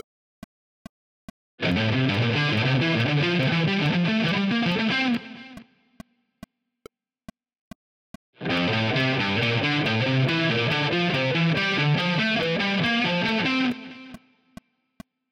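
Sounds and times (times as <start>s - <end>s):
guitar triad arpeggios: 1.6s - 5.6s, 8.4s - 14.1s.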